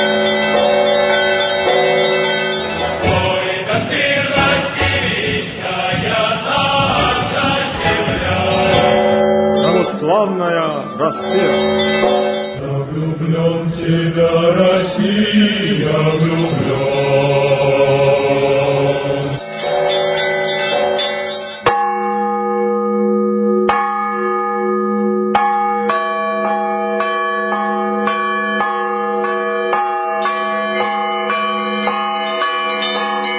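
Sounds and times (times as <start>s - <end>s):
Easter church bells pealing: 0.0s - 33.3s
speech: 10.2s - 11.9s, 13.1s - 17.4s.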